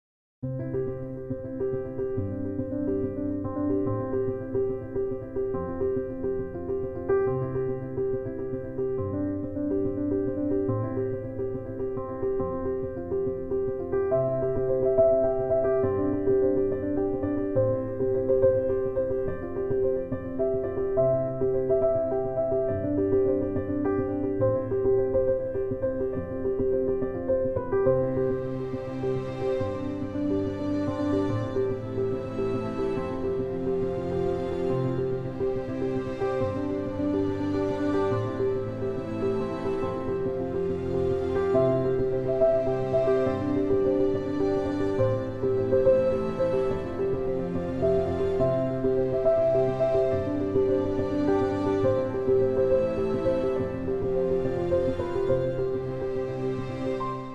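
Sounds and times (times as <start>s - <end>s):
soft classical piano: 0.4s - 57.3s.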